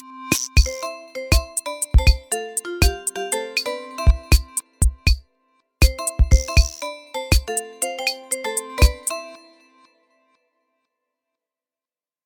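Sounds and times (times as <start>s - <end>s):
Tecno Spark Go 2023 phone ringtones: 0.4s - 5.2s, 5.8s - 9.6s.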